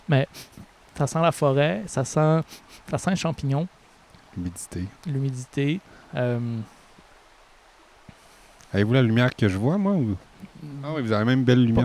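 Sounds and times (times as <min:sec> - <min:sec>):
flowing stream water: 0:00.0 - 0:11.8
speech: 0:00.1 - 0:03.8, 0:04.4 - 0:06.8, 0:08.7 - 0:11.8.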